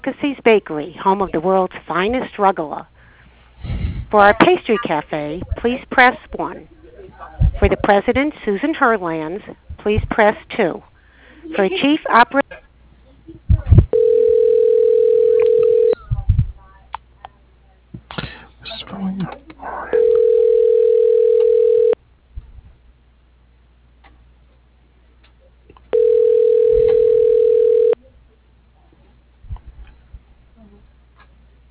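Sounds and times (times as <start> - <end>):
speech: 0.0 - 2.9, 4.1 - 12.6, 13.3 - 13.7
telephone ringback tones as a call is forwarded to voicemail: 13.9 - 16.0, 20.0 - 22.0, 25.9 - 28.0.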